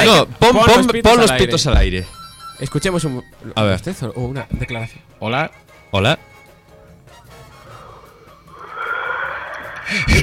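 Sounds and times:
speech: 0.1 - 6.3, 9.9 - 10.2
caller yawning on a phone line: 7.7 - 10.2.

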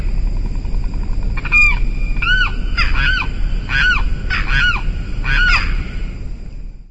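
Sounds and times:
low rumble: 0.0 - 6.8
limpkin Aramus guarauna giving wailing calls: 1.4 - 6.1.

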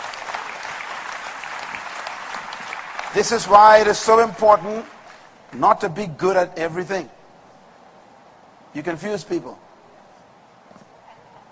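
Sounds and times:
crowd applause: 0.0 - 5.6
speech: 3.1 - 7.2, 8.7 - 9.6.

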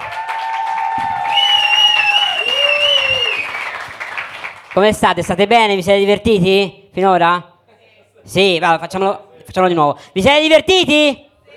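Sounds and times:
audience applause at a comedy night: 0.0 - 4.8
speech: 4.8 - 7.5, 8.2 - 11.2.

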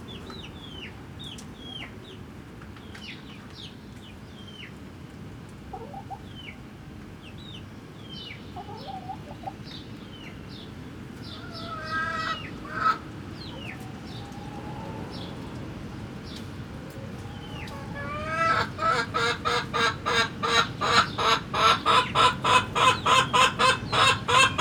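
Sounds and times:
chicks peeping in a henhouse: 7.3 - 24.5.

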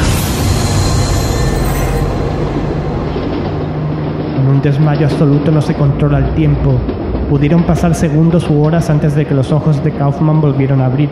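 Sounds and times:
midnight train rumbling and rattling on rails: 0.0 - 11.1
speech: 4.6 - 11.1.

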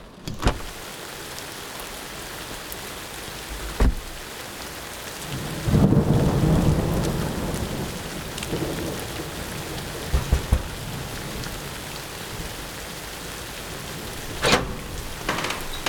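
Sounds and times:
rain hissing during a thunderstorm: 0.0 - 15.8
thunder crack: 5.6 - 15.8.

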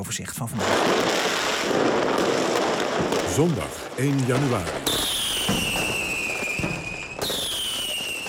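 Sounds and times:
speech: 0.0 - 5.7
fireworks exploding at a New Year celebration: 0.5 - 8.2.

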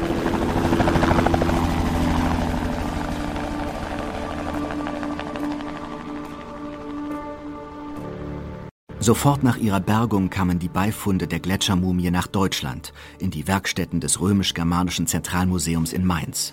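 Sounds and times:
helicopter flying: 0.0 - 8.7
speech: 9.0 - 16.5.

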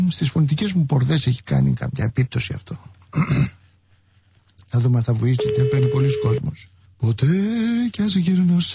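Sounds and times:
speech: 0.2 - 3.6, 4.7 - 8.7
telephone dialing tones calling a flu hotline number: 5.4 - 6.5.

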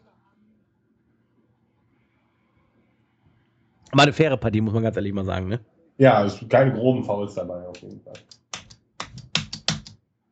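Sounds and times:
speech: 3.9 - 8.4
keys banged on a computer keyboard with flat batteries: 7.8 - 9.9.

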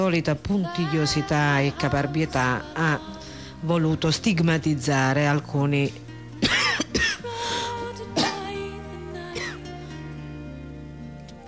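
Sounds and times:
speech: 0.0 - 6.5
live radio host coughing on air: 6.4 - 7.3, 8.2 - 8.5, 9.4 - 9.7
radio host clearing throat: 8.2 - 8.5.

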